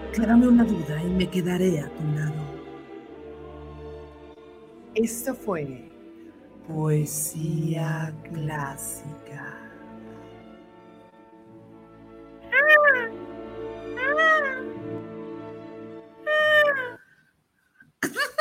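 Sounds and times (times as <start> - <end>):
speech: 0.2 - 2.5, 5.0 - 5.9, 6.7 - 9.6
human voice imitating whale song: 12.5 - 13.2, 14.0 - 14.8, 16.3 - 17.0.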